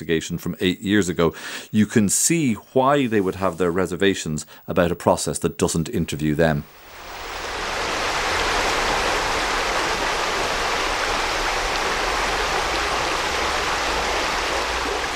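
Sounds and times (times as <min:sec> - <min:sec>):
speech: 0:00.0 - 0:07.0
river water rushing: 0:06.8 - 0:15.1.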